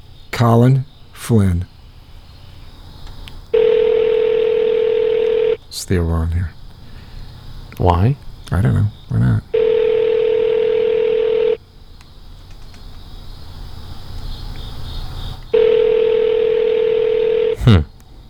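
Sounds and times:
speech: 0.4 - 1.7, 5.8 - 6.6, 7.8 - 9.4
outgoing call ringback tone through a phone line: 3.6 - 5.6, 9.6 - 11.6, 15.5 - 17.8.

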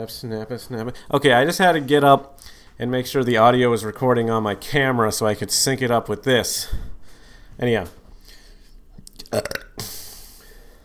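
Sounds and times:
speech: 0.0 - 6.9, 7.6 - 8.0, 9.3 - 9.6
steady hiss: 0.0 - 10.8
loud guttural burp: 9.2 - 10.0.

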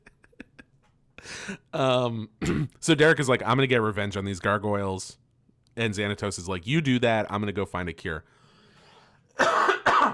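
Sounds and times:
speech: 1.2 - 5.2, 5.8 - 8.4
harsh coughs: 2.4 - 2.8, 9.4 - 10.1.

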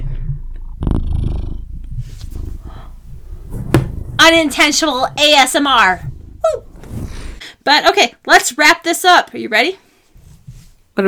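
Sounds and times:
cat purring against the microphone: 0.0 - 7.4
rustling bumps as the cat shifts: 0.4 - 7.4, 10.1 - 10.9
speech: 4.2 - 6.1, 7.7 - 9.8.

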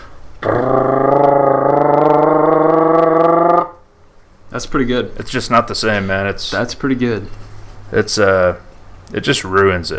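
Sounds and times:
person vocally imitating loud truck engine roar: 0.4 - 3.9
speech: 4.6 - 9.9.

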